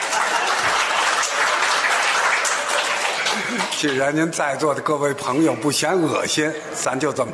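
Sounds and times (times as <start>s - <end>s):
audience applause: 0.0s - 4.4s
speech: 3.7s - 7.3s.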